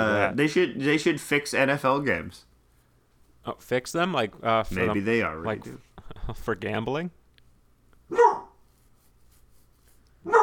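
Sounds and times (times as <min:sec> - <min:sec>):
speech: 0:00.0 - 0:02.5, 0:03.4 - 0:07.2, 0:08.1 - 0:08.4
dog barking: 0:08.1 - 0:08.6, 0:10.2 - 0:10.4.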